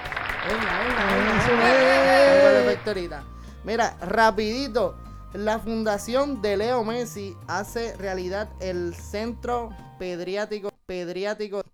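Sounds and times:
crowd applauding: 0.0s - 3.0s
speech: 0.4s - 1.9s, 2.7s - 11.7s.

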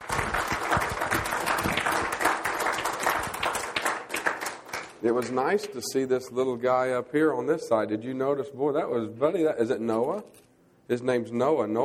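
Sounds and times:
crowd applauding: 0.0s - 5.4s
speech: 5.0s - 11.8s.

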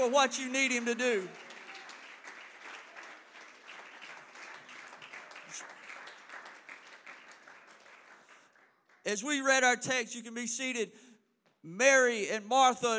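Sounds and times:
speech: 0.0s - 1.5s, 9.1s - 11.0s, 11.6s - 12.9s
church audience applause: 0.0s - 9.0s.

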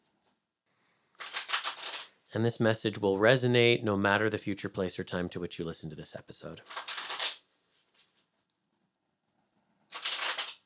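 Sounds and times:
tarot cards being shuffled: 1.2s - 2.1s, 6.7s - 7.4s, 9.9s - 10.6s
speech: 2.3s - 7.0s.

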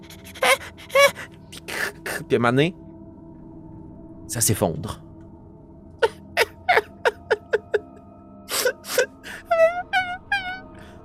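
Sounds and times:
voice imitating a creature's whimpering cries: 0.0s - 2.2s, 6.0s - 7.9s, 8.5s - 10.8s
speech: 2.2s - 2.8s, 4.3s - 5.0s.

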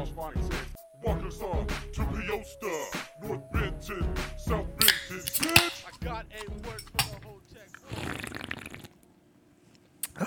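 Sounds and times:
speech: 0.0s - 8.2s
sharp metallic snap: 4.8s - 7.4s
beer cans being cracked open: 4.8s - 9.0s
fizzy hissing burst of escaping carbonation: 4.8s - 9.0s.

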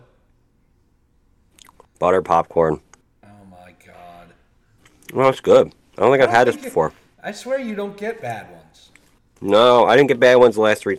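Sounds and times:
chewing jelly beans: 1.5s - 2.0s
wet mouth noises: 1.5s - 2.0s, 4.7s - 6.0s
speech: 2.0s - 2.9s, 5.1s - 10.9s.

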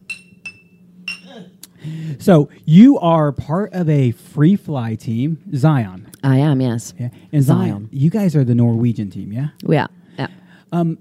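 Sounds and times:
glasses clinking in a toast: 0.0s - 1.4s
low hum: 0.0s - 10.9s
speech: 1.3s - 10.9s.

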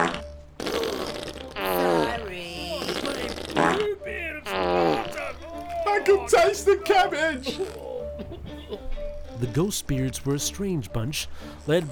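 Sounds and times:
fart sound effect with wobbling bending pitch: 0.0s - 3.9s, 4.5s - 5.4s, 7.4s - 8.0s
speech: 6.3s - 7.8s, 9.4s - 11.8s.

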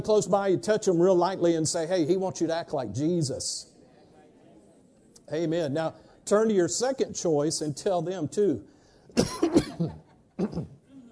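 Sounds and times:
speech: 0.0s - 3.7s, 5.3s - 10.8s
person coughing: 9.1s - 11.0s.

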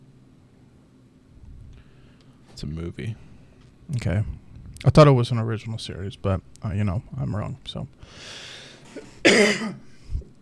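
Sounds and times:
speech: 2.6s - 3.3s, 3.9s - 8.5s, 9.3s - 9.9s
sharp harsh cough with raspy tail: 8.9s - 10.0s.

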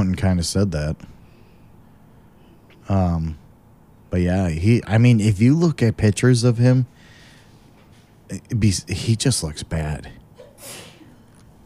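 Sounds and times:
speech: 0.1s - 1.2s, 2.9s - 3.4s, 4.1s - 7.0s, 8.3s - 10.8s
person sneezing: 10.4s - 11.2s.

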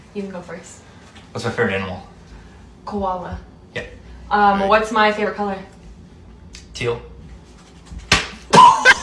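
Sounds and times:
speech: 0.2s - 2.2s, 2.8s - 5.7s, 6.8s - 7.1s
tortilla slapping a face during a game: 8.0s - 8.7s.

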